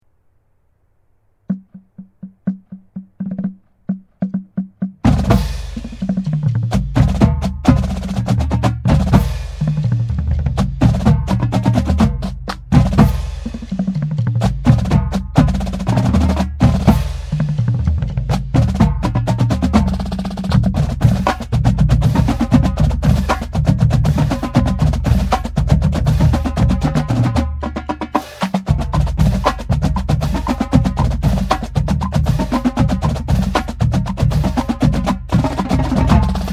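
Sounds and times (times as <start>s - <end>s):
sticks and swing percussion: 1.5s - 36.5s.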